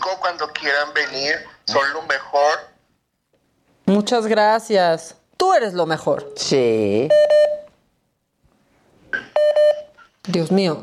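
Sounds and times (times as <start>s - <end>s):
speech: 0.1s - 2.7s, 3.9s - 7.5s, 10.3s - 10.8s
call-waiting beeps from an incoming phone call: 7.1s - 7.8s, 9.2s - 10.1s.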